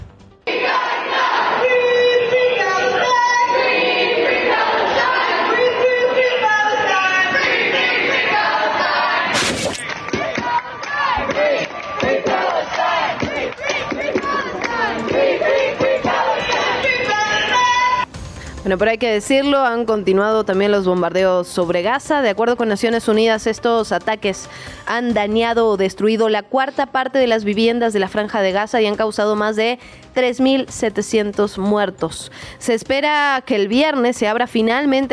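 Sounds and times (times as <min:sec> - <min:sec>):
large agitated protest crowd at the Capitol chanting and shouting: 0:00.4 - 0:18.1
brief sharp burst of noise: 0:09.3 - 0:10.0
speech: 0:18.7 - 0:35.1.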